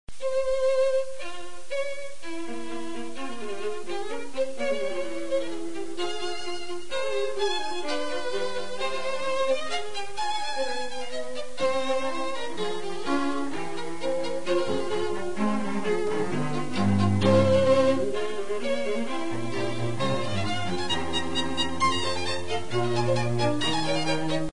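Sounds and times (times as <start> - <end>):
classical fugue: 0.1 - 24.5.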